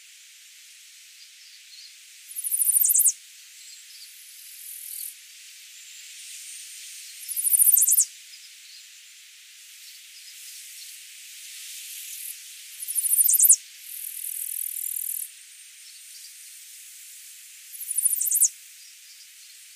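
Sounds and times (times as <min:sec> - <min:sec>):
faint high background hiss: 0:00.0 - 0:19.7
Setophaga pensylvanica chestnut-sided warbler singing: 0:02.4 - 0:03.1, 0:07.3 - 0:08.0, 0:12.9 - 0:13.6, 0:17.8 - 0:18.5.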